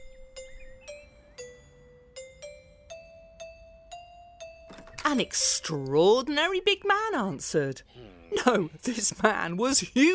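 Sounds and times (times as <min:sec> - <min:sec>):
doorbell chiming: 0:00.0 - 0:05.8
speech: 0:05.1 - 0:10.1.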